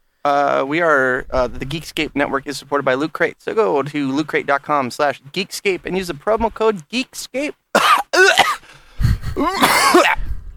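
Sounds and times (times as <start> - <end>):
speech: 0.2 - 8.4, 9.4 - 10.2
person coughing harshly: 7.8 - 10.3.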